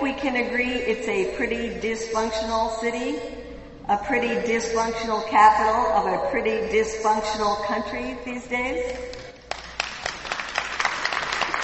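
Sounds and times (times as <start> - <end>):
speech: 0.2 - 9.2
audience applause at a talk: 9.5 - 11.6.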